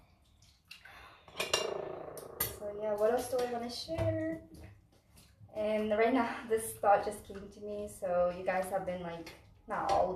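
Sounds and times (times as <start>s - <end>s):
dishes and cutlery clattering during washing: 1.3s - 1.8s
speech: 2.8s - 4.7s, 5.6s - 10.1s.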